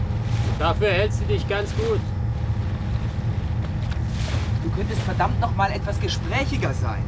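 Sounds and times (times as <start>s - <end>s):
large inflatable boat engine rumble on open water: 0.0s - 7.0s
wind buffeting: 0.0s - 7.0s
faint wash of water: 0.2s - 5.8s
speech: 0.6s - 2.2s, 4.8s - 7.0s.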